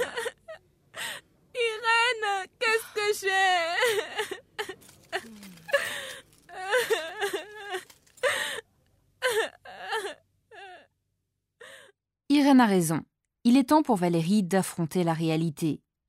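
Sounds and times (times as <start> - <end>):
woman crying and sobbing: 0.0 - 11.0
speech: 12.6 - 15.8.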